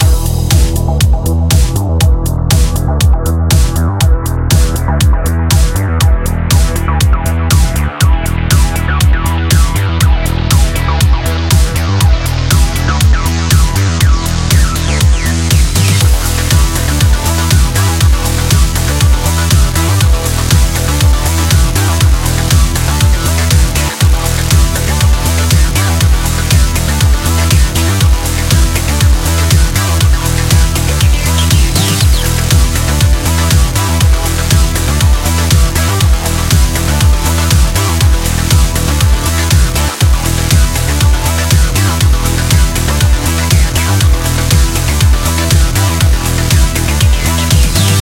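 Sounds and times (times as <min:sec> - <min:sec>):
game music: 0:00.0 - 0:47.9.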